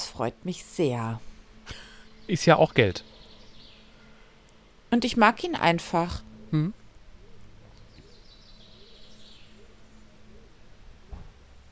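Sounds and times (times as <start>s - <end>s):
faint birds chirping outside open window: 0.0s - 11.7s
steady low room hum: 0.0s - 11.7s
speech: 0.2s - 3.1s, 4.9s - 6.8s
soft thump: 11.1s - 11.4s.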